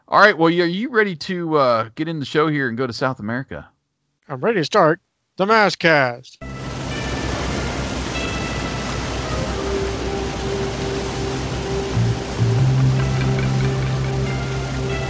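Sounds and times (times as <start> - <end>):
speech: 0.1 - 3.7, 4.3 - 6.5
raging waterfall roaring: 6.4 - 15.0
low droning hum: 6.5 - 15.0.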